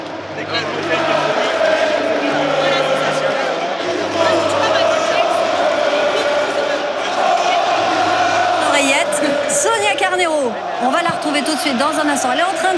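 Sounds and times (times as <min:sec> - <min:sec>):
dense stadium crowd roaring: 0:00.0 - 0:12.7
speech: 0:00.4 - 0:01.1, 0:11.4 - 0:12.7.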